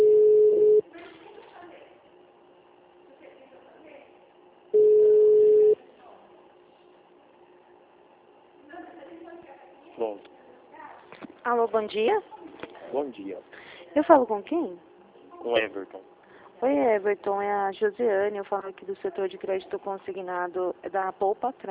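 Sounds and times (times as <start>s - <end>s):
ringback tone on a telephone line while a call is being connected: 0.0s - 0.8s, 4.8s - 5.8s
speech: 11.6s - 12.3s, 12.9s - 21.6s.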